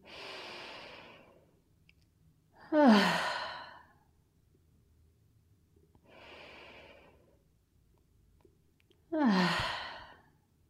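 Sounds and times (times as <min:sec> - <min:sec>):
deep breath in through nose and exhale: 0:00.0 - 0:01.6, 0:02.7 - 0:04.0, 0:06.0 - 0:07.4, 0:09.2 - 0:10.4.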